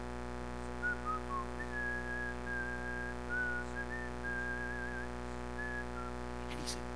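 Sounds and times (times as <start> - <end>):
constant low hum: 0.0 - 6.9
man in Romania whistling a slow hymn melody: 0.8 - 6.2.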